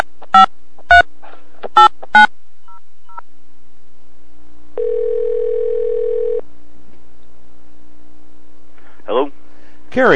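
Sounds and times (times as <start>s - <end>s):
faint steady hum: 0.0s - 10.1s
short electronic telephone tones as a call is placed: 4.8s - 6.4s
speech: 10.0s - 10.1s.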